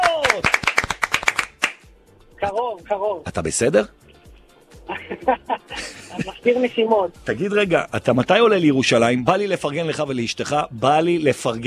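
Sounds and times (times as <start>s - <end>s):
applause as people clap: 0.0s - 1.9s
speech: 2.5s - 4.0s, 4.9s - 11.6s
laughter: 4.9s - 6.8s.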